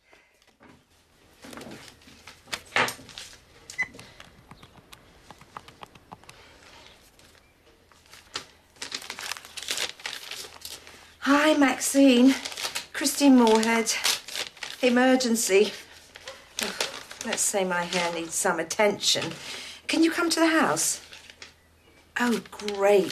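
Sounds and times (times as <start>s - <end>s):
plain brown paper envelope rustling and crinkling as it is opened in a kitchen: 1.2s - 18.5s, 21.0s - 21.6s, 22.2s - 23.1s
speech: 11.5s - 12.5s, 13.2s - 14.2s, 14.8s - 15.8s, 17.3s - 21.0s, 22.2s - 23.1s.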